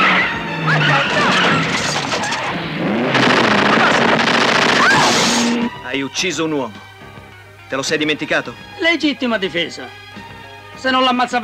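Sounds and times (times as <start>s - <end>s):
car tire squeals while skidding: 0.0s - 3.2s
car engine roaring while accelerating hard: 0.0s - 5.8s
speech: 6.0s - 6.9s, 7.7s - 10.0s, 10.8s - 11.4s.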